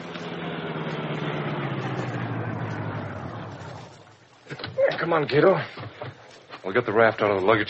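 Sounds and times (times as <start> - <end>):
car engine humming as the car drives off the road toward a shore: 0.0 - 4.8
speech: 5.0 - 5.8, 6.6 - 7.6.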